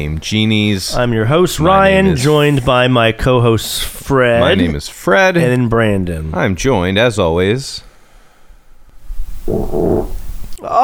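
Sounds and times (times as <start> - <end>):
speech: 0.0 - 7.9, 9.5 - 10.8
quiet low murmur: 9.1 - 10.6
short loud low rumbling fart: 9.2 - 10.6.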